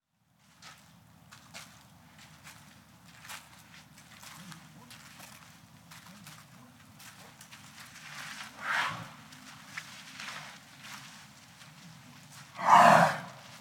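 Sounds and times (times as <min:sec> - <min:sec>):
elephant snorting: 0:08.6 - 0:09.2, 0:12.6 - 0:13.4.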